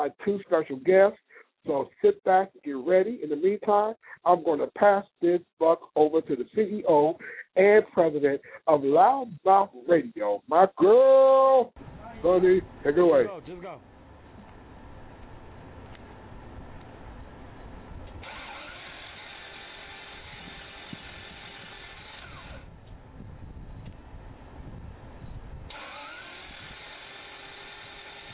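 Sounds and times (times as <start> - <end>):
speech: 0.0 - 13.9
car engine cranking and failing to start: 18.0 - 20.4, 25.7 - 26.4.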